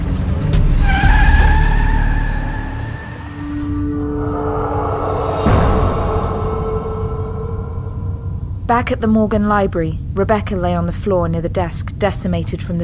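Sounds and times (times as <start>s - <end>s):
taxi cab tires screeching to a halt: 0.0s - 8.2s
speech: 8.8s - 12.8s.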